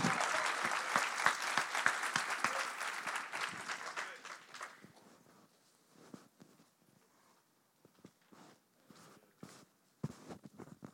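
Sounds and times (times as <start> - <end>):
room full of people applauding: 0.0 - 5.0.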